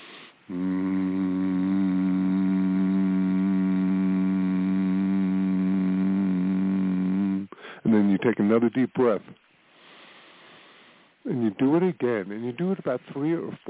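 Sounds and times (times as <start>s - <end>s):
speech: 0.5s - 0.7s, 7.9s - 9.5s, 11.3s - 13.6s
person humming one long steady low tone as a conscious-hum relaxation exercise: 0.5s - 7.6s.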